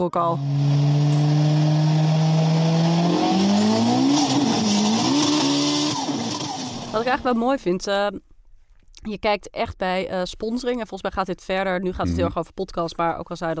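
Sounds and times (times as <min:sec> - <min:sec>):
speech: 0:00.0 - 0:01.5, 0:06.9 - 0:08.3, 0:09.0 - 0:13.5
racing car engine revving in an advertisement: 0:00.4 - 0:07.0.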